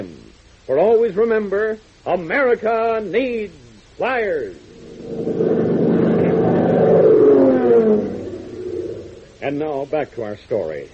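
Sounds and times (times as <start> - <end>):
speech: 0.7 - 5.5, 9.4 - 10.9
sedan engine roaring speeding down a state highway: 4.6 - 9.4.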